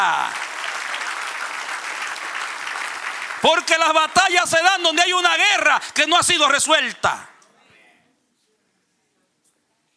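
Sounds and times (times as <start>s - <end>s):
church congregation applauding: 0.0s - 7.4s
speech: 3.4s - 7.3s.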